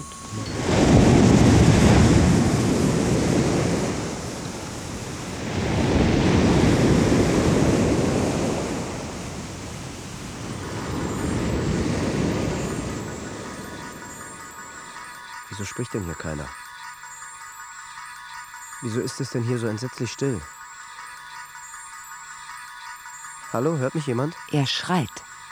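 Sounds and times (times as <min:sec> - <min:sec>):
sea surf waves rushing: 0:00.0 - 0:16.2
steady hiss under sea surf: 0:00.0 - 0:25.5
speech: 0:15.6 - 0:16.6, 0:18.8 - 0:20.6, 0:23.5 - 0:25.3.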